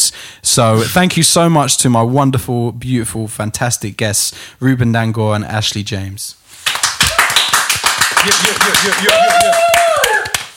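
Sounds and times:
speech: 0.1 - 6.7, 8.2 - 9.7
steady hand clapping in a quick even rhythm: 6.6 - 10.5.

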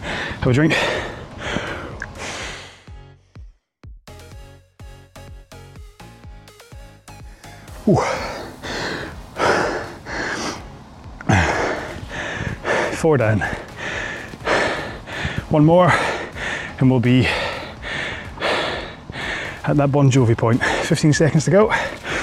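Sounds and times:
heavy labored panting after exertion during a rowing workout: 0.0 - 2.9, 7.4 - 19.7, 20.5 - 22.2
speech: 0.4 - 1.1, 7.9 - 8.2, 13.0 - 13.6, 15.5 - 16.1, 16.8 - 17.4, 19.7 - 21.9.

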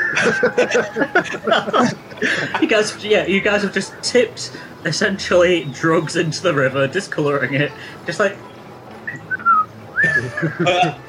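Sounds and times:
laughter: 0.0 - 4.7, 9.9 - 11.0
speech: 0.1 - 8.5, 10.2 - 11.0
person whistling while walking away: 9.1 - 10.3.

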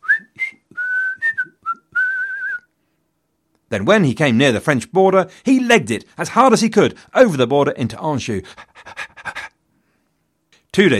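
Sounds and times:
person whistling a short casual tune: 0.0 - 2.7
speech: 3.7 - 9.0, 10.8 - 10.9.

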